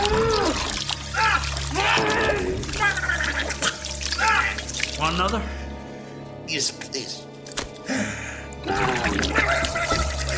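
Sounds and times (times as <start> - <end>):
wet gurgling of liquid in a throat with strained voiced tones: 0.0 - 4.0, 8.6 - 10.3
speech: 5.1 - 5.6, 6.5 - 7.3.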